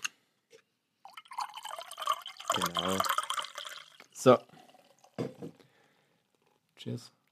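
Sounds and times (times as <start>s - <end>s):
tea being poured in a splashing stream: 1.0s - 5.4s
speech: 2.6s - 3.2s, 4.2s - 4.5s, 6.8s - 7.2s.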